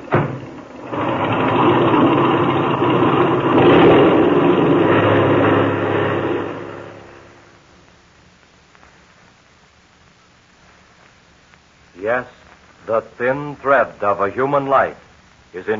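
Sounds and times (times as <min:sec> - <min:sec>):
small propeller airplane engine revving for takeoff: 0:00.7 - 0:07.7
speech: 0:13.2 - 0:15.7.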